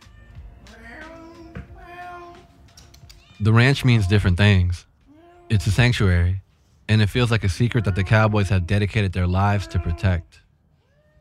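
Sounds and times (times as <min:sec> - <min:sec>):
cat meowing on a ranch: 0:00.1 - 0:04.4, 0:05.1 - 0:05.8, 0:07.4 - 0:11.1
speech: 0:03.4 - 0:04.9, 0:05.5 - 0:10.4.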